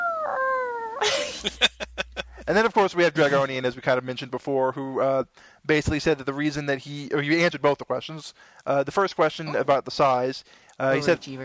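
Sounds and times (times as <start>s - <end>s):
cat yowling: 0.0s - 1.0s
speech: 1.0s - 1.6s, 2.5s - 11.4s
laughter: 1.0s - 2.6s.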